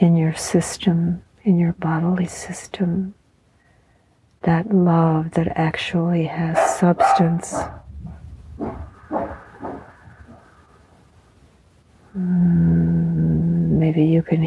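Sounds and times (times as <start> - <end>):
speech: 0.0 - 3.2, 4.4 - 7.8, 12.2 - 13.2, 13.8 - 14.4
quiet indistinct sounds: 0.0 - 14.4
dog barking in a drawn-out howling yelp: 6.6 - 7.9.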